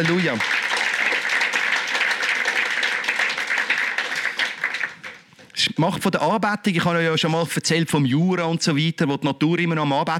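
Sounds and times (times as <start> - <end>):
speech: 0.0 - 0.6, 5.8 - 10.1
crowd applauding: 0.0 - 5.3.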